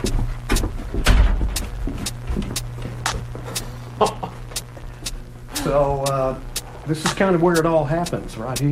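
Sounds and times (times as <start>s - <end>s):
close footsteps on a hard floor: 0.0s - 3.8s
low hum: 0.0s - 8.7s
door thudding shut: 1.0s - 1.5s
speech: 5.7s - 8.7s.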